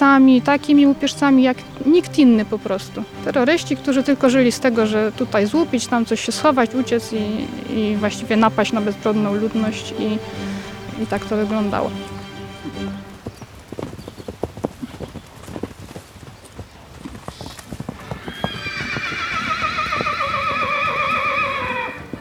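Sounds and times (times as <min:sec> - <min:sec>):
young Malopolski horse hooves clip-clopping on hard ground at a horse show: 0:00.0 - 0:22.1
speech: 0:00.1 - 0:13.0
young Malopolski horse whinnying at a horse show: 0:17.9 - 0:22.1.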